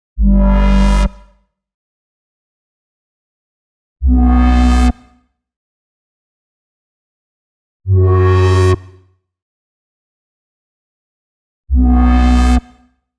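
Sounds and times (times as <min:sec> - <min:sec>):
B minor bass line at 125 BPM: 0:00.2 - 0:01.3, 0:04.0 - 0:04.9, 0:11.7 - 0:12.6.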